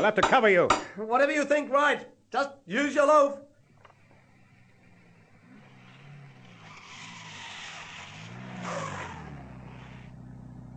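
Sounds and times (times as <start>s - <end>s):
speech: 0.0s - 3.5s
tyres screeching as car brakes hard: 3.5s - 10.3s
staff car engine approaching: 3.6s - 10.7s.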